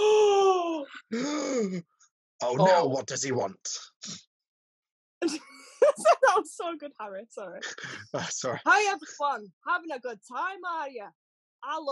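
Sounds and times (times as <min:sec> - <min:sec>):
voice imitating a shocked audience gasping: 0:00.8 - 0:01.8, 0:07.6 - 0:08.6
speech: 0:01.1 - 0:04.3, 0:05.2 - 0:11.9
laughter: 0:05.2 - 0:06.5, 0:07.6 - 0:09.2.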